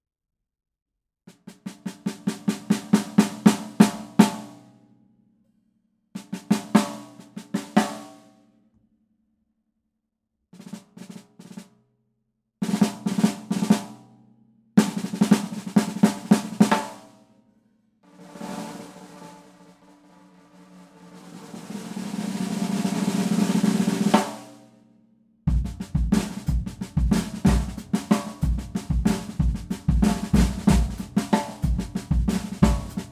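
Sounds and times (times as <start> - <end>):
DW Craviotto 5x14 snare drum: 1.4 - 4.6, 6.2 - 8.2, 10.6 - 11.7, 12.6 - 14.0, 14.8 - 17.2, 18.1 - 24.6, 25.5 - 33.1.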